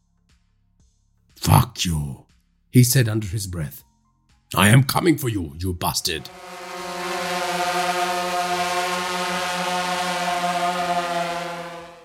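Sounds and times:
speech: 0:01.5 - 0:03.9, 0:04.5 - 0:06.6
small UAV drone buzzing overhead: 0:06.2 - 0:12.0.

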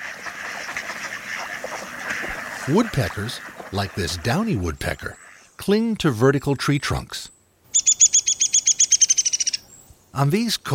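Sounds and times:
ducks quacking softly floating in a sheltered bay on a cold night: 0:00.0 - 0:05.5
steady hiss: 0:00.0 - 0:10.7
speech: 0:02.7 - 0:07.3, 0:10.2 - 0:10.7.

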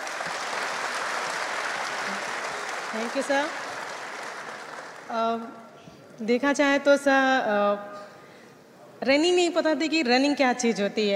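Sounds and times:
large crowd applauding in an indoor hall: 0:00.0 - 0:05.2
speech: 0:02.9 - 0:03.6, 0:05.1 - 0:08.0, 0:09.0 - 0:11.1.

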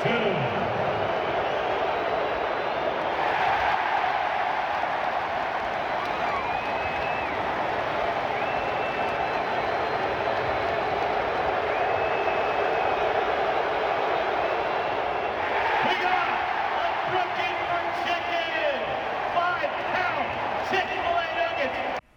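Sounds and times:
large indoor basketball arena crowd roaring and cheering: 0:00.0 - 0:22.0
whistles: 0:05.6 - 0:15.5.

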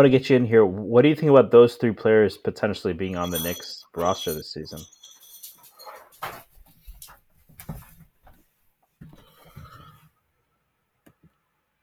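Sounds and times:
speech: 0:00.0 - 0:05.0
clattering: 0:03.2 - 0:07.1
rustling: 0:03.2 - 0:10.0
dog whining and yelping while being given its food: 0:03.3 - 0:06.4.

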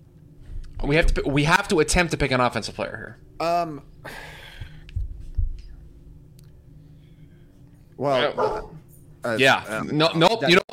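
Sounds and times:
low steady hum: 0:00.0 - 0:10.7
speech: 0:00.8 - 0:04.3, 0:08.0 - 0:10.6
dog barking: 0:08.3 - 0:08.8.

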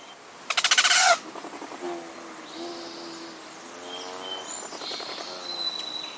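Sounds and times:
rufous and ruby-throated hummingbirds whistling and chittering: 0:00.0 - 0:06.1
buzzy pulsing hummingbird wingbeat bursts: 0:00.5 - 0:04.3.

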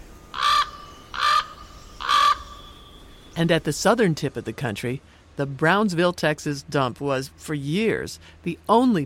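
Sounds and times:
common raven croaking: 0:00.3 - 0:02.6
speech: 0:03.4 - 0:09.0.

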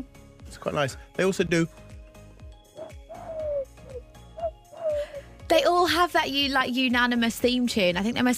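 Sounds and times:
speech: 0:00.0 - 0:01.8, 0:05.5 - 0:08.3
pigeon cooing in soft rolling calls: 0:02.8 - 0:05.2.

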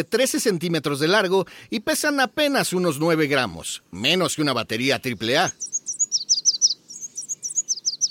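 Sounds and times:
speech: 0:00.0 - 0:05.7
red warbler singing: 0:04.4 - 0:08.0.

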